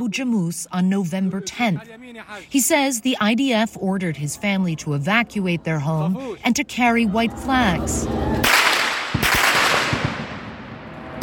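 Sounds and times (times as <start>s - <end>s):
speech: 0.0s - 8.6s
gunshots in a street: 8.4s - 11.2s.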